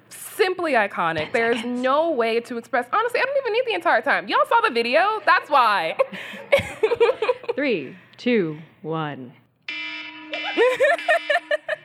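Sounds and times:
speech: 0:00.5 - 0:09.4
laughter: 0:05.1 - 0:07.6, 0:10.5 - 0:11.8
phone alarm ringtone: 0:09.7 - 0:11.8.

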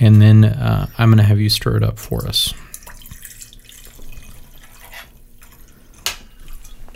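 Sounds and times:
speech: 0:00.0 - 0:02.7
aged rum pouring into a small one-ounce measure: 0:02.5 - 0:06.8.

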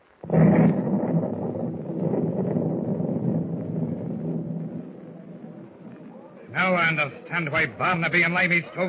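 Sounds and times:
explosions aboard an old ship: 0:00.0 - 0:06.5
speech: 0:06.9 - 0:08.8.

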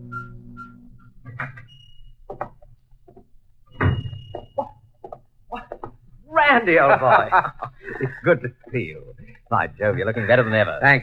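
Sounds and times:
knocks and clicks: 0:01.2 - 0:06.0
clocks ticking in a clock shop: 0:01.2 - 0:11.0
clock shop door thumping shut: 0:03.7 - 0:04.6
laughter: 0:05.5 - 0:05.9, 0:06.5 - 0:11.0
speech: 0:06.6 - 0:11.0.

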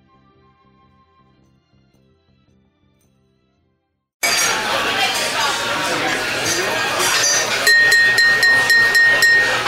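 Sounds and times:
crowd chattering: 0:04.2 - 0:09.6
glasses clinking in a toast: 0:07.1 - 0:09.6.

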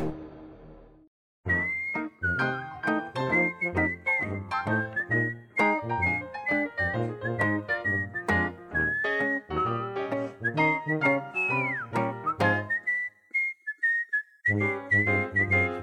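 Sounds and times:
bouncy instrumental backing with bass and chords: 0:01.5 - 0:12.9
bright whistled melody: 0:01.5 - 0:15.8.

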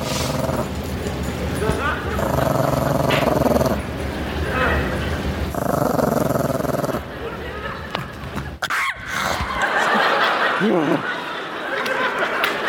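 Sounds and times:
dog growling and snarling with sharper yips: 0:00.0 - 0:01.0, 0:01.9 - 0:04.0, 0:05.3 - 0:07.1
people talking and chuckling: 0:00.0 - 0:12.6.

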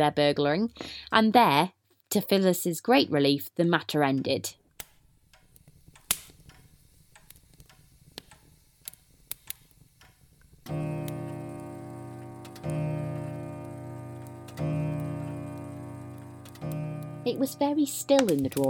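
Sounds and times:
speech: 0:00.0 - 0:04.6, 0:17.4 - 0:18.6
clock ticking softly: 0:05.3 - 0:18.6.

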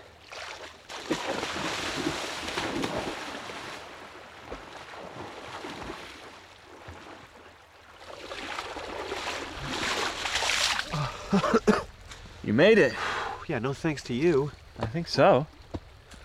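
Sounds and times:
person plunging into cold water and thrashing about: 0:00.0 - 0:11.6
speech: 0:12.5 - 0:15.6.

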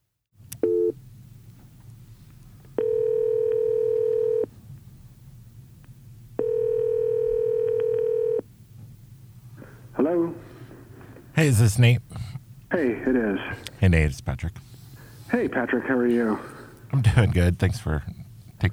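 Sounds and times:
low steady hum on the telephone line: 0:00.4 - 0:18.7
telephone beep: 0:00.6 - 0:01.0, 0:02.8 - 0:04.5, 0:06.4 - 0:08.4
speech: 0:11.4 - 0:12.0, 0:12.8 - 0:14.7, 0:15.3 - 0:18.7.

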